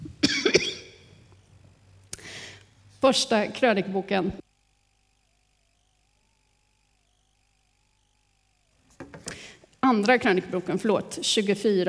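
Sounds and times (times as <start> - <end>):
throaty coughs: 0.2 - 1.0
speech: 3.0 - 4.4, 9.9 - 11.8.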